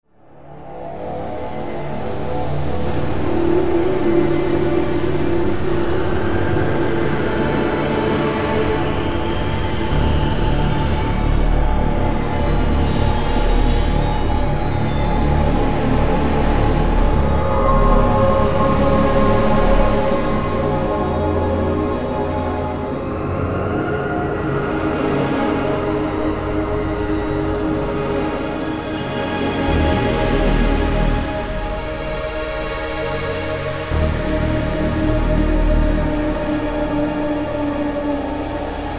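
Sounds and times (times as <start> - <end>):
spooky ambience: 0.4 - 38.9.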